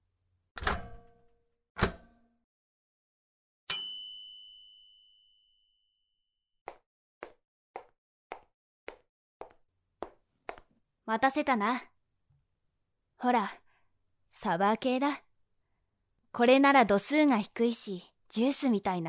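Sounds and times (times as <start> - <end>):
microwave oven ding after heating snacks: 3.7 - 5.9
speech: 11.1 - 11.9, 13.2 - 13.6, 14.4 - 15.2, 16.4 - 19.0.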